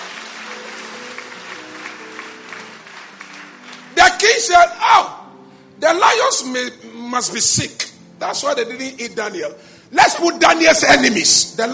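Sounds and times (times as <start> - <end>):
church congregation clapping during a sermon: 0.0 - 4.8
speech: 4.2 - 5.2, 5.8 - 11.7.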